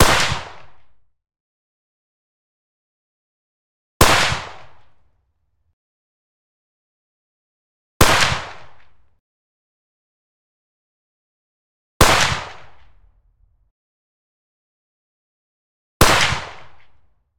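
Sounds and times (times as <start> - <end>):
Sako TRG 22 clean single shots: 0.0 - 0.8, 4.0 - 4.8, 8.0 - 8.8, 12.0 - 12.8, 16.0 - 16.8.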